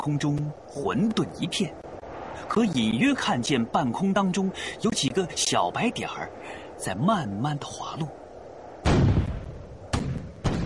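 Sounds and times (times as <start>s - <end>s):
speech: 0.0s - 8.2s
anti-aircraft gunfire: 8.8s - 10.6s.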